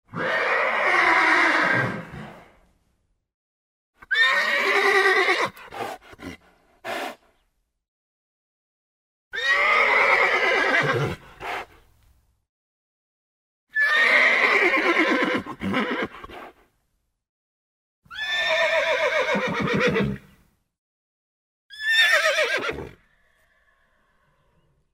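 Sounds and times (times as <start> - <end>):
horse neighing: 0.1 - 2.1, 4.1 - 5.6, 9.4 - 11.2, 13.7 - 16.2, 18.1 - 20.3, 21.7 - 24.4.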